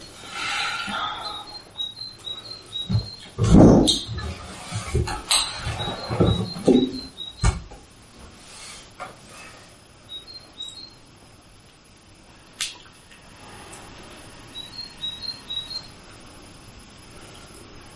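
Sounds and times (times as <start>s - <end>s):
birds chirping: 0.0s - 7.6s, 10.0s - 11.1s, 14.5s - 16.0s.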